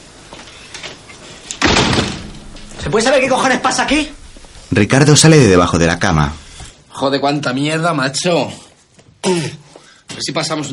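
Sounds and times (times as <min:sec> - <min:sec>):
house door slamming shut: 0:01.6 - 0:04.4
short noisy rumble: 0:01.7 - 0:06.8
speech: 0:02.9 - 0:04.2, 0:04.8 - 0:06.4, 0:07.0 - 0:08.6, 0:09.2 - 0:10.7.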